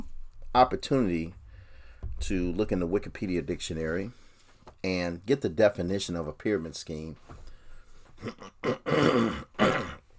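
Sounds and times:
speech: 0.5 - 1.4, 2.2 - 4.2, 4.8 - 7.4, 8.2 - 9.9
throat clearing from someone with a lingering throat problem: 8.2 - 10.1.

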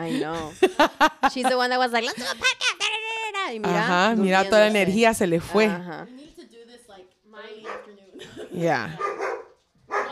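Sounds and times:
speech: 0.0 - 2.9, 3.5 - 6.2, 8.2 - 9.2
dog barking, yipping and whimpering: 9.0 - 10.1.

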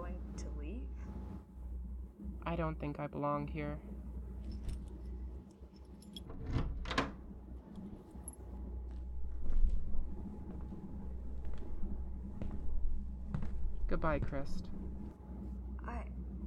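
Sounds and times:
low steady hum: 0.0 - 16.4
speech: 2.5 - 4.0, 14.0 - 14.8
keys jangling: 4.4 - 6.4.

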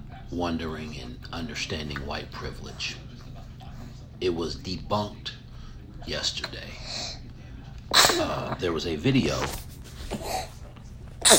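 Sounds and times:
speech: 0.3 - 3.0, 4.2 - 5.4, 6.0 - 7.2, 7.9 - 10.5
sneeze: 7.9 - 8.5.

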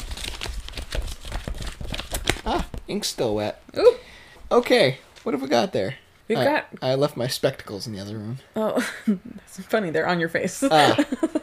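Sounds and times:
paper scrolls crinkling and rustling as they are unrolled: 0.0 - 3.4
speech: 2.4 - 11.4.

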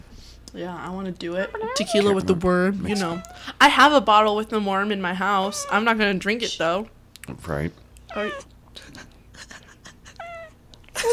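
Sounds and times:
speech: 0.5 - 9.1
faint murmuring: 1.4 - 3.6, 5.2 - 6.1, 8.1 - 10.6
cat meowing into a microphone: 1.5 - 2.2, 2.9 - 3.5, 5.3 - 6.0, 8.1 - 8.5, 10.1 - 10.6.

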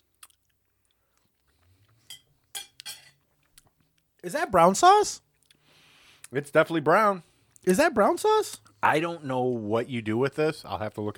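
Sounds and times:
spoons clinking together: 2.1 - 3.2
speech: 4.2 - 5.2, 6.3 - 11.1.

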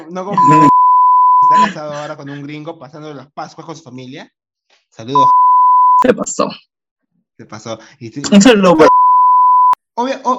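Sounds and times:
speech: 0.1 - 0.8, 1.5 - 5.4, 6.0 - 6.7, 7.4 - 9.0, 10.0 - 10.3
laughter: 0.2 - 0.7, 1.4 - 2.6
censor beep over a name: 0.4 - 1.6, 5.2 - 6.1, 8.8 - 9.8.

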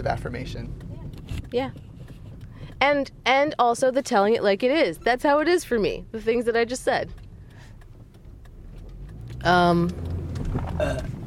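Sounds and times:
speech: 0.0 - 1.9, 2.8 - 7.2, 9.4 - 10.1, 10.8 - 11.1
loud throaty burp: 10.6 - 11.2.

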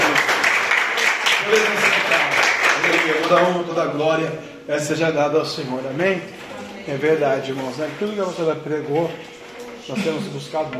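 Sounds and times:
audience applauding: 0.0 - 3.7
faint murmur of voices: 1.7 - 10.7
speech: 3.3 - 9.3, 9.9 - 10.7.

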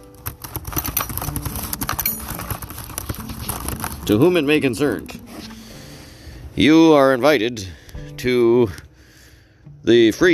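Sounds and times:
typing on a keyboard: 0.0 - 4.2
speech: 4.1 - 5.2, 6.6 - 8.8, 9.8 - 10.3.

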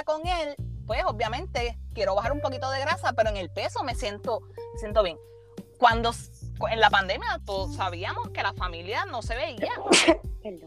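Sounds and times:
speech: 0.1 - 10.6
sneeze: 9.8 - 10.2.

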